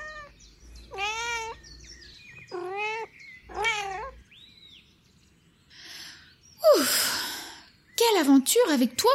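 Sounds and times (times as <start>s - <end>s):
cat meowing: 0.0s - 1.7s, 2.5s - 4.2s
faint chirping: 0.0s - 9.1s
speech: 8.3s - 9.1s.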